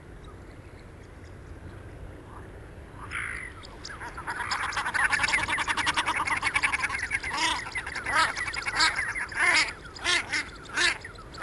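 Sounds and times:
Common shelduck Tadorna tadorna rattling cackle series: 0:04.3 - 0:11.4.

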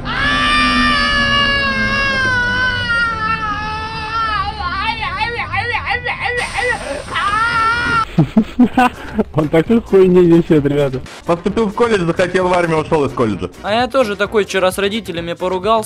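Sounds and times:
man screaming into a microphone as if in agony: 0:00.0 - 0:08.1
laughter: 0:01.5 - 0:10.6
speech: 0:08.8 - 0:15.8.

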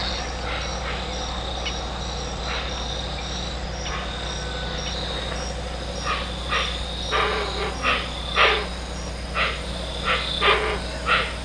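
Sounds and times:
Hoatzin Opisthocomus hoazin producing soft breathy grating calls: 0:00.0 - 0:11.4
steady hum: 0:00.0 - 0:11.4.

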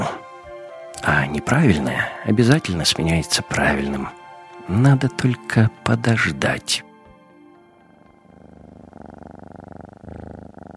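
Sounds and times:
speech: 0:01.0 - 0:06.9
cat purring: 0:07.5 - 0:10.7.

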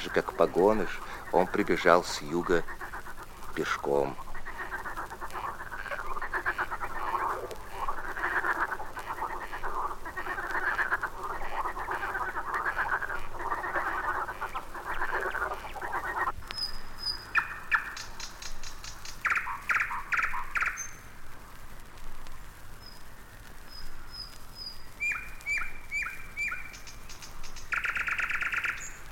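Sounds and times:
speech: 0:00.0 - 0:02.8, 0:03.6 - 0:04.2
marsh frogs croaking in a night chorus: 0:00.0 - 0:21.3, 0:22.8 - 0:29.1.

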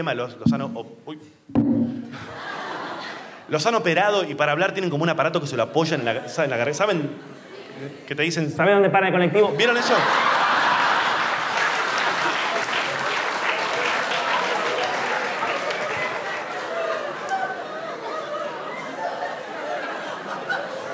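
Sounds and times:
speech: 0:00.0 - 0:02.5, 0:03.5 - 0:10.4
laughter: 0:02.1 - 0:03.4, 0:05.6 - 0:08.1, 0:09.6 - 0:13.1, 0:15.8 - 0:20.9
crowd applauding: 0:09.8 - 0:20.9.

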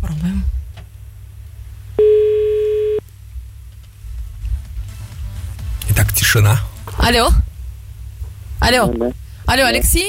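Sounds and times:
low rumble: 0:00.0 - 0:10.0
speech: 0:00.2 - 0:00.6, 0:06.3 - 0:07.5, 0:08.6 - 0:10.0
telephone ringing tone, a steady electronic beep: 0:02.0 - 0:03.0.

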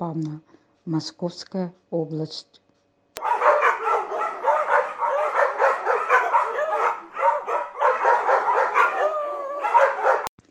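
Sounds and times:
speech: 0:00.0 - 0:02.6
guide dog in training barking and yipping: 0:03.2 - 0:10.3.

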